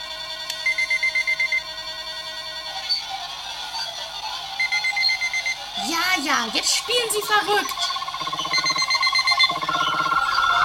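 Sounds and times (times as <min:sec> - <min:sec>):
alarm clock ringing in fast electronic beeps: 0:00.6 - 0:10.6
smeared sustained tone: 0:05.7 - 0:10.6
speech: 0:06.2 - 0:08.0
high chirps: 0:07.2 - 0:10.6.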